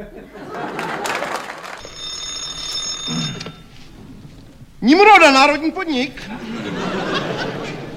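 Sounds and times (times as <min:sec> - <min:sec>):
laughter: 0:00.0 - 0:01.8, 0:05.8 - 0:07.9
electric telephone bell ringing: 0:01.8 - 0:04.6
commotion: 0:02.7 - 0:06.6
speech: 0:04.8 - 0:06.4.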